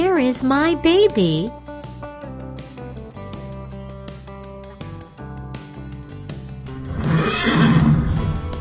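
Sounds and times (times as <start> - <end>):
speech: 0.2 - 1.6
horse whinnying: 6.8 - 8.4.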